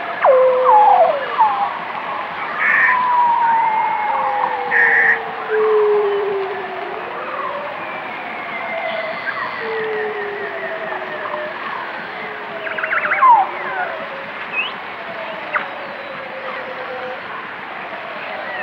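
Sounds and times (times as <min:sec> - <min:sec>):
whale song: 0:00.0 - 0:17.3.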